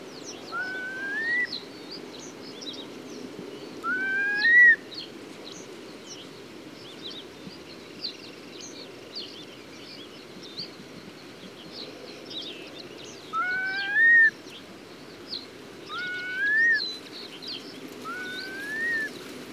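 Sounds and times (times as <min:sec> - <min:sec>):
curlew orientalis: 0:00.5 - 0:01.5, 0:03.8 - 0:04.8, 0:13.3 - 0:14.4, 0:15.9 - 0:16.8, 0:18.0 - 0:19.1.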